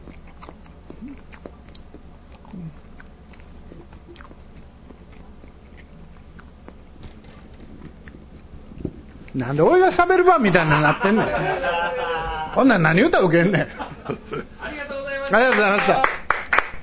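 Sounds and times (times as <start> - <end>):
chewing quail eggs with wet clicky mouth sounds: 0.0 - 9.4
low hum: 0.0 - 16.8
speech: 9.4 - 16.2
laughter: 10.4 - 16.0.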